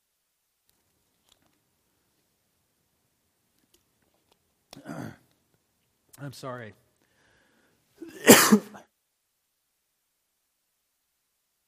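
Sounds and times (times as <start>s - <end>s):
speech: 6.2s - 6.8s, 8.5s - 8.9s
single sharp explosive cough: 8.0s - 8.9s.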